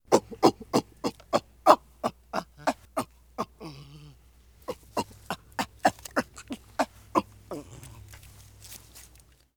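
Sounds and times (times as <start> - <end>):
ape grunting: 0.1 - 8.2.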